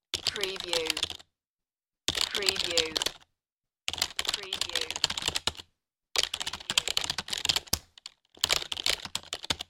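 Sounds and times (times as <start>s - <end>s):
fast typing on a computer keyboard: 0.1s - 1.2s, 2.1s - 3.2s, 3.9s - 5.6s, 6.2s - 9.6s.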